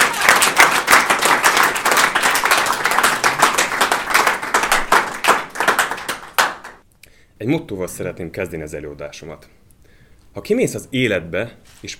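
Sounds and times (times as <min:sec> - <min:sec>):
audience applause welcoming a speaker: 0:00.0 - 0:06.8
speech: 0:07.4 - 0:09.6, 0:10.4 - 0:11.9.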